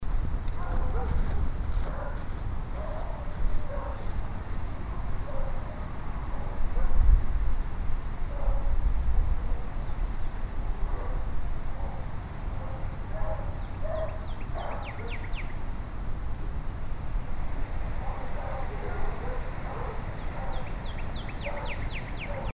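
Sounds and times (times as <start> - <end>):
birds: 0.0 - 7.6, 9.4 - 22.5
dog: 0.6 - 4.2, 4.9 - 7.0, 8.3 - 8.7, 10.8 - 15.2, 18.0 - 20.7, 21.4 - 22.5.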